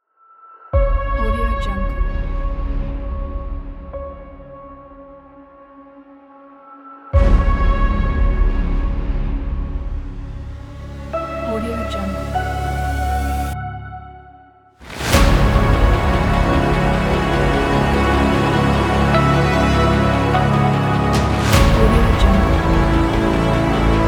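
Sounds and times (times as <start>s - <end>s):
atmospheric action cinematic trailer teaser music: 0.8s - 24.0s.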